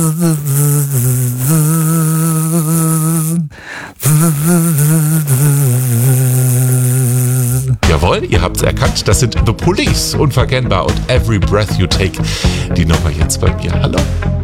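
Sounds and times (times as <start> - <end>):
speech: 0.0 - 0.6, 8.6 - 14.4
buzzy bee-like drone humming a catchy pop hit melody: 0.0 - 7.8.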